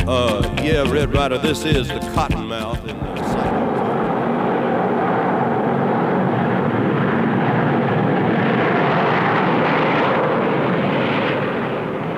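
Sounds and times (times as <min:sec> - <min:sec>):
speech: 0:00.1 - 0:03.5
jet airplane flying overhead: 0:03.0 - 0:12.1.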